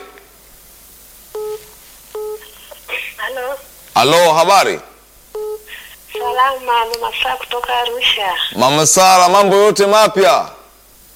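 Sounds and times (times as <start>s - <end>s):
dual-tone beeps of a telephone call connecting: 1.4s - 2.6s, 5.4s - 6.4s
speech: 3.4s - 4.9s, 6.3s - 10.6s
higher electronic tones of a telephone call: 5.4s - 6.4s.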